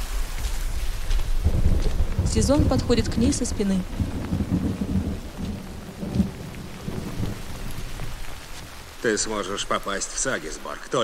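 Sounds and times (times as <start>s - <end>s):
steady rain falling outside a cave: 0.0s - 11.0s
speech: 2.3s - 4.2s, 9.0s - 11.0s.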